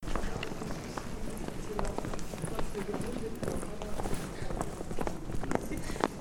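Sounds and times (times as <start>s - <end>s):
footsteps walking on cobblestones: 0.0s - 6.1s.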